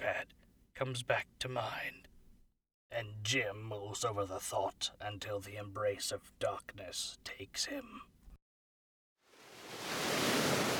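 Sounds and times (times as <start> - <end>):
speech: 0.0 - 2.1, 2.9 - 8.1
roar of rushing water: 9.4 - 10.7.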